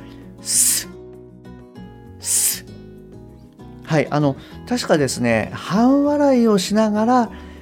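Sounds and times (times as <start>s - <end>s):
speech: 0.4s - 0.9s, 3.9s - 7.5s
sharp hissing s sounds made by breath blown against front teeth: 0.4s - 1.0s, 2.2s - 2.8s.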